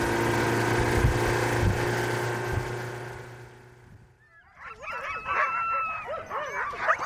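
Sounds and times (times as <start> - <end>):
steady motor drone: 0.0 - 4.1
tethered sled huskies barking, yipping and howling: 4.3 - 7.0.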